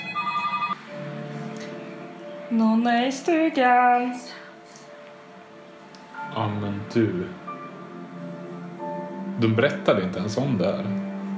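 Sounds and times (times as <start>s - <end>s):
several telephones ringing electronically: 0.0s - 0.8s
speech: 2.5s - 4.4s, 6.4s - 7.4s, 9.4s - 11.1s.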